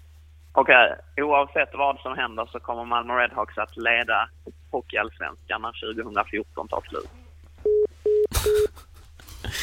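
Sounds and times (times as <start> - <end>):
speech: 0.6 - 7.2
telephone busy tone after a hang-up: 7.6 - 8.6.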